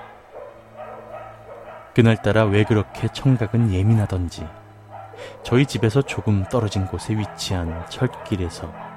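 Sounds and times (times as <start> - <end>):
many neighborhood dogs barking in an overlapping chorus: 0.0 - 8.9
steady low hum: 0.0 - 8.9
speech: 2.0 - 4.6, 5.2 - 8.9.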